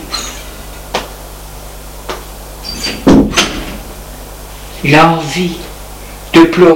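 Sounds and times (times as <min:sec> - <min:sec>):
apartment door shutting with a firm thud: 0:02.7 - 0:03.8
speech: 0:04.8 - 0:05.7, 0:06.3 - 0:06.7.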